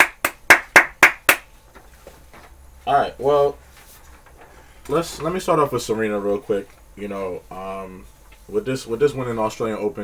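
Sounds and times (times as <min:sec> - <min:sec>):
hands clapping in a steady rhythm: 0:00.0 - 0:01.6
speech: 0:02.9 - 0:03.6, 0:04.9 - 0:10.0.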